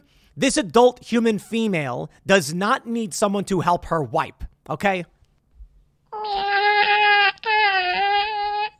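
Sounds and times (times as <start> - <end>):
speech: 0.4 - 5.2
adult woman imitating a cat meow: 6.2 - 8.7.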